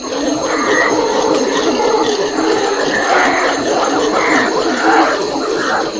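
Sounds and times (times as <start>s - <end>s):
angry monkey: 0.0s - 5.9s.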